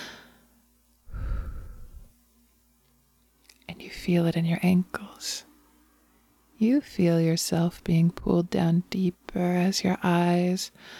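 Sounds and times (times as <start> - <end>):
soft breath exhaled: 1.1 - 2.1
speech: 3.8 - 5.5, 6.6 - 10.9.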